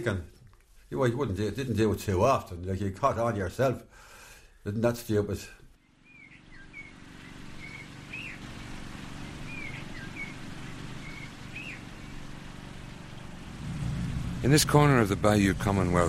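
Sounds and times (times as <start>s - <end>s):
speech: 0.0s - 0.3s, 0.9s - 5.6s, 14.4s - 16.0s
distant motor mower mowing in a war cemetery: 5.8s - 16.0s
birds chirping and whistling in a war cemetery: 6.0s - 12.9s.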